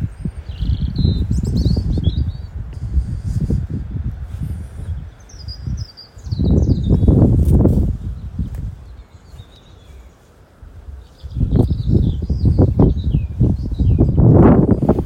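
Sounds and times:
birds chirping: 0:00.0 - 0:15.0
strong wind gusts outdoors: 0:00.0 - 0:15.0.

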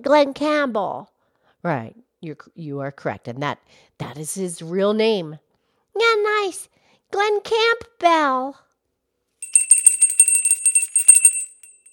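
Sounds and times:
speech: 0:00.0 - 0:05.4, 0:06.0 - 0:08.6
small dinner bell ringing: 0:09.4 - 0:11.9.

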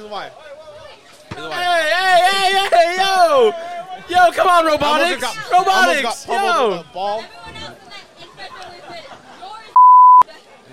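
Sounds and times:
speech: 0:00.0 - 0:02.6, 0:03.4 - 0:07.4
overlapping voices chattering: 0:00.0 - 0:10.7
censor bleep over profanity: 0:09.8 - 0:10.2.

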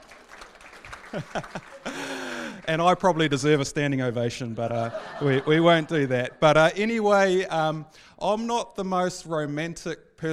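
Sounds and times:
audience applause: 0:00.0 - 0:03.3
laughter: 0:00.9 - 0:02.9, 0:04.6 - 0:06.4
speech: 0:01.1 - 0:02.1, 0:02.7 - 0:10.3.

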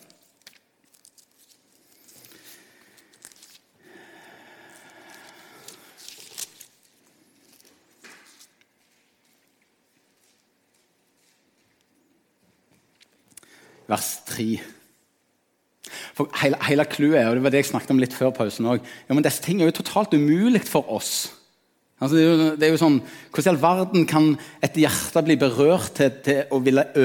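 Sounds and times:
Bible pages being turned: 0:00.0 - 0:03.9, 0:04.7 - 0:10.6
speech: 0:13.9 - 0:14.8, 0:16.2 - 0:21.4, 0:22.0 - 0:27.0.

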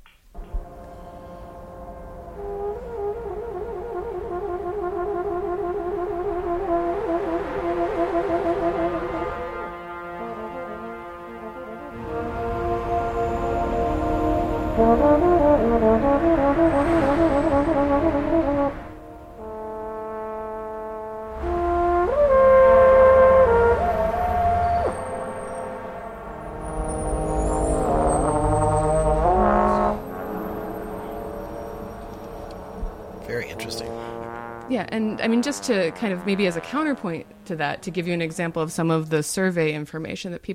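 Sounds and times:
brassy horn-like instrument playing: 0:00.4 - 0:38.4
street traffic and passing vehicles rumbling: 0:12.0 - 0:19.5, 0:21.4 - 0:39.0
speech: 0:35.4 - 0:40.5.

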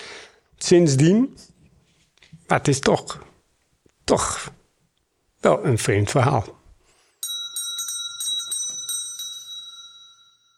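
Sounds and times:
speech: 0:00.6 - 0:01.5, 0:02.5 - 0:03.3, 0:04.1 - 0:04.6, 0:05.4 - 0:06.6
small bell ringing with rapid repeated strikes: 0:07.2 - 0:10.5.

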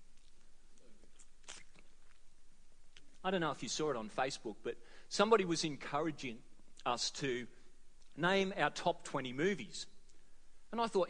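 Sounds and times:
person sipping a drink: 0:00.1 - 0:02.3
soft mouth clicks: 0:00.2 - 0:02.3
speech: 0:03.2 - 0:07.6, 0:08.2 - 0:09.9, 0:10.7 - 0:11.0.

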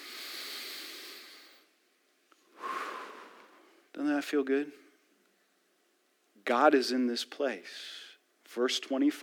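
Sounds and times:
group exhaling breathily: 0:00.0 - 0:01.6, 0:02.6 - 0:03.7
group taking a deep breath together: 0:00.0 - 0:01.6, 0:02.6 - 0:03.8
speech: 0:04.0 - 0:04.8, 0:06.4 - 0:09.2.

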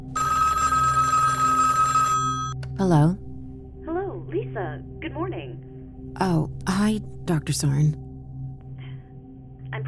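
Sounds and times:
telephone ringing: 0:00.1 - 0:02.6
speech: 0:02.8 - 0:03.3, 0:04.5 - 0:08.0.

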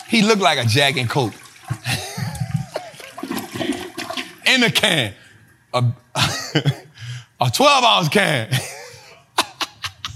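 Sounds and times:
toilet flushing with water swirling down the bowl: 0:00.0 - 0:05.1
speech: 0:00.1 - 0:01.4, 0:04.6 - 0:06.8, 0:07.4 - 0:08.7.

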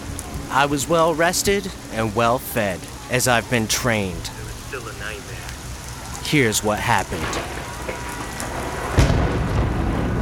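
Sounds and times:
steady hissing rain: 0:00.0 - 0:10.2
speech: 0:00.5 - 0:05.5, 0:06.3 - 0:08.1
thunder crack rolling into a low rumble: 0:07.1 - 0:10.2.

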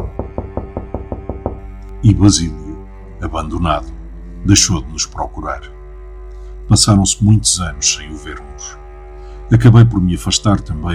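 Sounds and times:
man knocking rapidly on the door of a home: 0:00.0 - 0:01.7
speech: 0:02.0 - 0:02.6, 0:03.2 - 0:05.8, 0:06.7 - 0:08.8, 0:09.5 - 0:10.9.

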